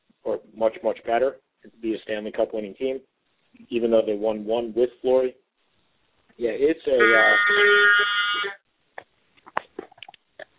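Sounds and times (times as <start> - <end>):
speech: 0.3 - 5.4, 6.4 - 8.5
phone notification buzzing tone: 7.0 - 8.6.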